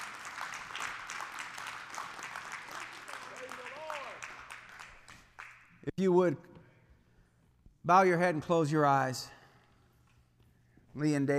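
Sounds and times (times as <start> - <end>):
audience clapping in sustained dense applause: 0.0 - 5.7
speech: 5.9 - 6.5, 7.9 - 9.4, 11.0 - 11.3.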